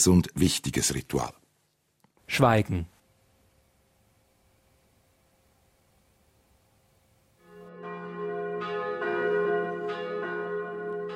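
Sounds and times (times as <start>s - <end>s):
speech: 0.0s - 1.4s, 2.3s - 2.9s
church bells ringing: 7.4s - 11.1s.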